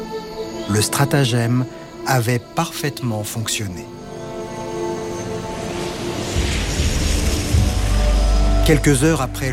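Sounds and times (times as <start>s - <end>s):
speech: 0.7s - 4.0s, 8.7s - 9.5s
airplane engine roaring as it lands at Bogota airport in Colombia: 4.1s - 9.5s
deep rumble: 5.2s - 9.5s.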